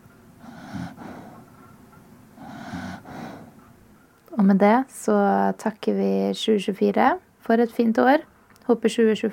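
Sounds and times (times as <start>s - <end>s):
person snoring with raspy inhale and throaty rattle: 0.4s - 1.4s, 2.4s - 3.6s
speech: 4.4s - 9.3s.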